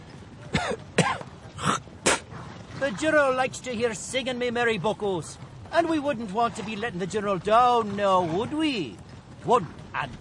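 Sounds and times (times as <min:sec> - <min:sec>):
man clearing dust from his nose and throat: 0:00.5 - 0:02.3
speech: 0:00.6 - 0:00.9, 0:02.8 - 0:10.1.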